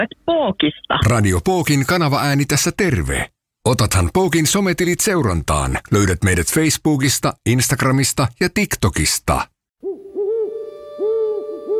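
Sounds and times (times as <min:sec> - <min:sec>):
speech: 0:00.0 - 0:09.5
owl hooting: 0:09.8 - 0:11.7.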